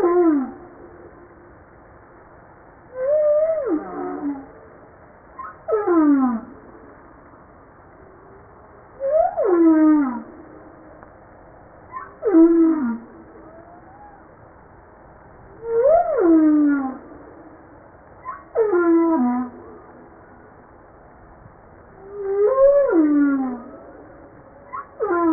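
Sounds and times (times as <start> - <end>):
humpback whale descending harmonic moans: 0.0 - 0.7, 2.9 - 4.6, 5.4 - 6.6, 9.0 - 10.4, 11.9 - 14.4, 15.6 - 17.2, 18.2 - 19.8, 22.0 - 25.3.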